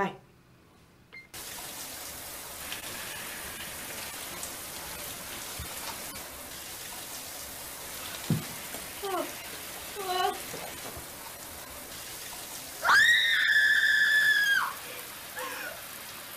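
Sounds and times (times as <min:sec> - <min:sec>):
shower water running: 0:01.4 - 0:16.3
faint knock: 0:08.2 - 0:08.6.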